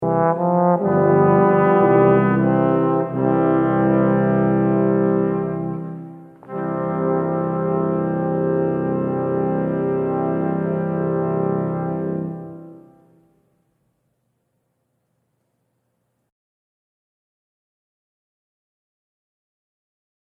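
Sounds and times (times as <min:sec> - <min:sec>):
brass waltz: 0:00.0 - 0:13.4.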